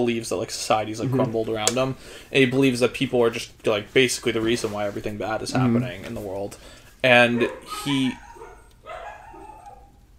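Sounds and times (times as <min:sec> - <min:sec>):
speech: 0:00.0 - 0:08.2
low hum: 0:00.0 - 0:10.1
dog barking and whining: 0:07.3 - 0:10.1.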